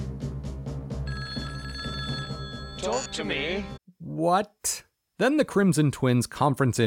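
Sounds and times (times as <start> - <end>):
telephone ringing with quick rhythmic pulses: 1.1 - 3.8
speech: 2.8 - 6.8.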